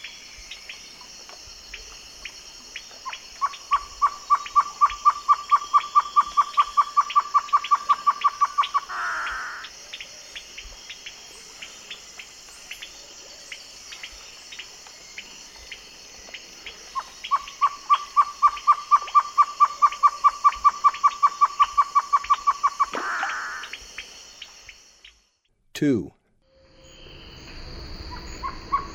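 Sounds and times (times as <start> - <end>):
great antshrike hooting ending in a harsh snarl: 2.7 - 13.0, 16.6 - 25.2, 25.9 - 28.9
speech: 25.8 - 26.1.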